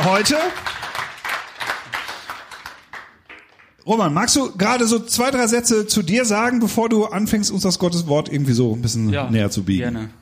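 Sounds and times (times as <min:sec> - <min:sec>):
speech: 0:00.0 - 0:00.8, 0:03.9 - 0:10.2
audience clapping at a church service: 0:00.0 - 0:03.9.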